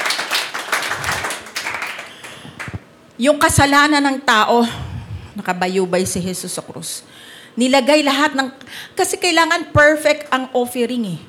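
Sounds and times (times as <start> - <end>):
church congregation clapping hands: 0.0 - 2.9
speech: 3.2 - 4.8, 5.4 - 11.2.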